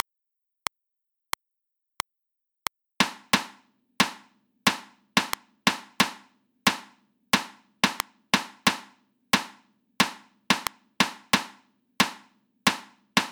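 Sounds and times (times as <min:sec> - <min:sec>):
reversed rhythm in sixteenth notes: 0:03.0 - 0:13.3.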